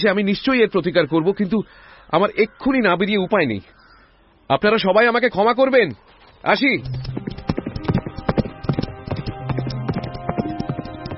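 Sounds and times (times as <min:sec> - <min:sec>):
speech: 0:00.0 - 0:03.8, 0:04.5 - 0:07.1
horse hooves galloping on hard ground: 0:06.8 - 0:11.1.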